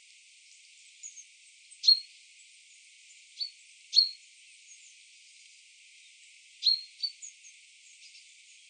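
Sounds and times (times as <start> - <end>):
light hiss: 0.0 - 8.6
common chaffinch Fringilla coelebs calls: 1.8 - 2.1, 3.4 - 4.2, 6.6 - 7.3.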